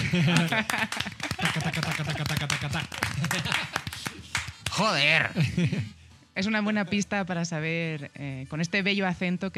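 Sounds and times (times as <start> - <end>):
people laughing: 0.0 - 4.4, 5.2 - 5.9
flamenco-style hand claps welcoming a guest: 0.0 - 5.1
speech: 0.1 - 3.9, 4.8 - 9.5.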